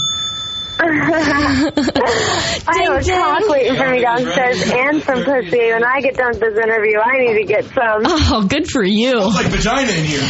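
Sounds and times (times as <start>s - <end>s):
bell ringing with a bright metallic tone: 0.0s - 2.1s
laughter: 0.8s - 5.9s
speech: 0.9s - 10.2s.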